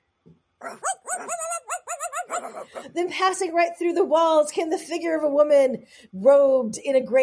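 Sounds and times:
speech: 0:00.3 - 0:00.9, 0:02.8 - 0:07.2
dogs whining and howling: 0:00.6 - 0:02.9.

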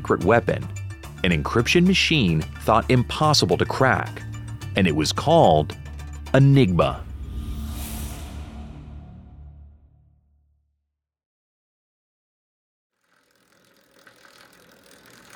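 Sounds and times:
speech: 0:00.1 - 0:07.1
bicycle pedaled on a ride to work: 0:13.0 - 0:15.3.

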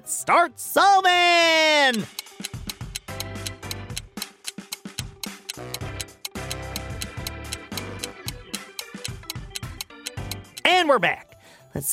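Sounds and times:
speech: 0:00.0 - 0:02.6, 0:10.8 - 0:11.9
countdown clock ticking: 0:01.5 - 0:10.9
tense music with a pulsing bass line: 0:02.0 - 0:10.7.

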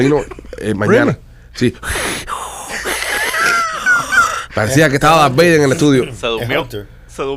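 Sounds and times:
speech: 0:00.0 - 0:02.3, 0:04.6 - 0:07.3
rapid wheezy heavy breathing into a microphone: 0:01.3 - 0:03.4
laughter: 0:02.7 - 0:04.9.

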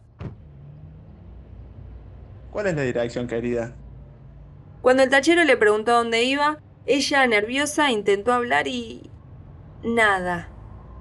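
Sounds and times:
taxi car door thunk: 0:00.2 - 0:00.5
speech: 0:02.5 - 0:03.8, 0:04.8 - 0:09.1, 0:09.8 - 0:10.5.

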